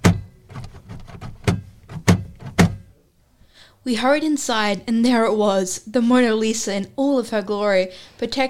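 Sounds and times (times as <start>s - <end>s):
rattling and shuffling of passengers stepping out: 0.0s - 3.0s
taxi doors slamming shut: 1.2s - 2.9s
speech: 3.8s - 8.4s.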